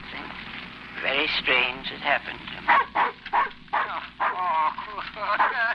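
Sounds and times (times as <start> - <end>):
speech: 1.3 - 2.8
dog barking: 2.7 - 4.4, 5.4 - 5.6.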